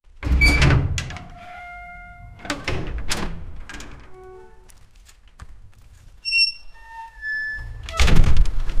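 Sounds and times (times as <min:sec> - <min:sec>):
rusty gate: 0:00.2 - 0:04.7, 0:06.2 - 0:08.4.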